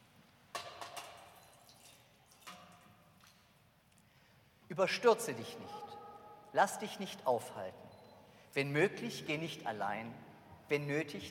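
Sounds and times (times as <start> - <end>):
water poured in short splashing bursts: 1.1 - 3.4
faint water trickling: 1.2 - 4.2
speech: 4.7 - 5.9, 6.5 - 7.9, 8.5 - 11.2.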